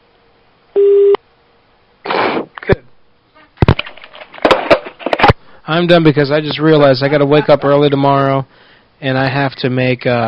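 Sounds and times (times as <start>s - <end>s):
telephone tone after hanging up: 0.8s - 1.2s
clattering knocks and rattles of the phone being handled: 3.6s - 5.4s
speech: 5.7s - 10.2s.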